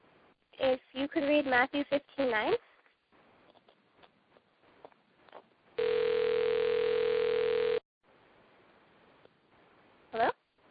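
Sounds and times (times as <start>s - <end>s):
faint noise: 0.0s - 10.6s
speech: 1.0s - 2.7s
phone ringing with electronic tone: 5.8s - 7.8s.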